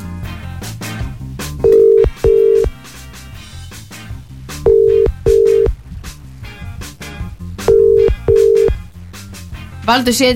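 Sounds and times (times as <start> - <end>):
steady music: 0.0 - 10.3
double-burst ringback tones of an unanswered outgoing phone call: 1.6 - 2.8, 4.7 - 5.8, 7.7 - 8.8
speech: 9.9 - 10.3.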